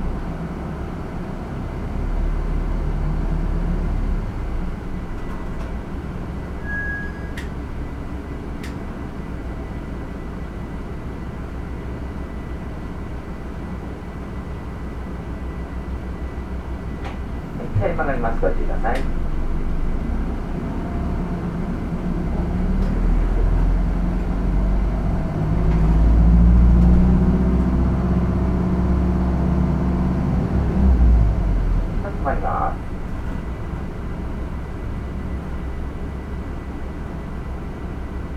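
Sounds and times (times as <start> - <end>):
bus engine rumbling as the bus pulls away and drives: 0.0 - 38.3
faint high squeaks: 6.6 - 7.5
speech: 18.1 - 19.2.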